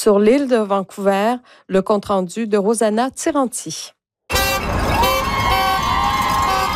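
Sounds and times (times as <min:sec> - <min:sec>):
speech: 0:00.0 - 0:04.0
busy crowd noise: 0:04.3 - 0:06.7
car horns honking at a picket rally: 0:04.3 - 0:06.7
traffic noise: 0:04.3 - 0:06.7.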